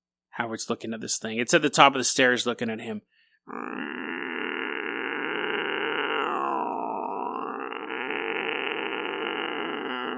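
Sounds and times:
speech: 0.4s - 4.2s
person vocally imitating a demonic cat yowl: 3.5s - 10.1s.

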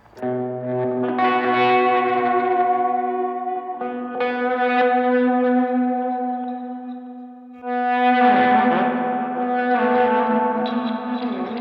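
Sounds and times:
guitar played through reverse delay effect: 0.0s - 11.6s.

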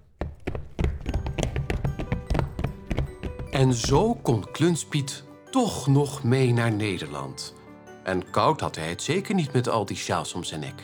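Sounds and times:
horse hooves galloping: 0.0s - 4.6s
jingling: 1.0s - 4.6s
speech: 3.6s - 10.8s.

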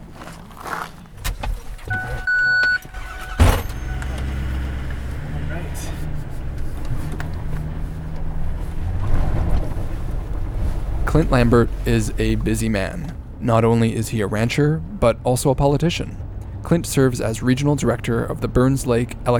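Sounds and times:
dirty truck engine rumbling from inside the cab: 0.0s - 19.3s
brief electronic chime: 1.9s - 4.1s
sharp thump: 3.4s - 4.2s
speech: 11.2s - 19.3s.

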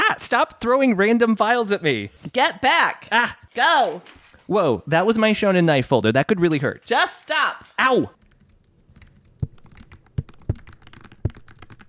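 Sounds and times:
speech: 0.1s - 8.2s
soft rapid computer keyboard clicking: 8.2s - 11.8s.

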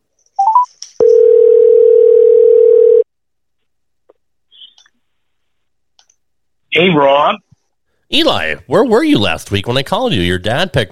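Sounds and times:
telephone ringing tone: 0.4s - 3.1s
speech: 6.8s - 7.4s, 8.1s - 10.9s.

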